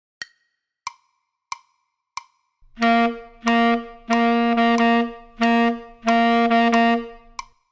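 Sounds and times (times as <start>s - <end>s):
tenor saxophone playing: 2.6s - 7.5s.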